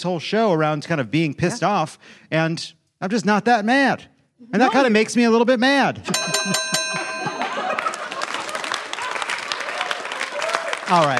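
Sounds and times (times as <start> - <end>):
speech: 0.0 - 6.6, 10.9 - 11.1
laughter: 4.4 - 5.2, 6.0 - 10.4
bright bell ringing: 6.1 - 8.6
crowd noise: 7.0 - 11.1
loud applause: 7.4 - 11.1.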